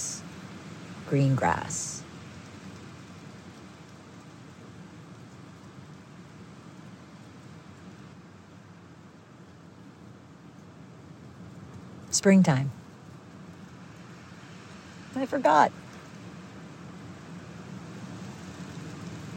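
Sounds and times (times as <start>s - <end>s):
heavy spring rain pattering on surfaces: 0.0s - 19.3s
speech: 1.1s - 1.9s, 12.2s - 12.8s, 15.2s - 15.8s.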